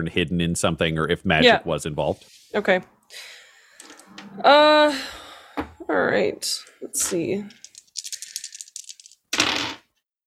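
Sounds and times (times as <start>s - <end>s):
speech: 0.0s - 3.4s, 4.2s - 7.6s
three dice rattling in a cupped hand: 7.5s - 9.6s.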